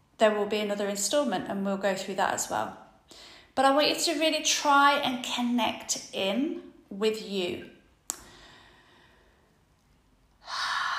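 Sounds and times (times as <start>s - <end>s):
speech: 0.2s - 7.7s
deep sigh-like breath: 8.2s - 9.6s, 10.4s - 10.9s.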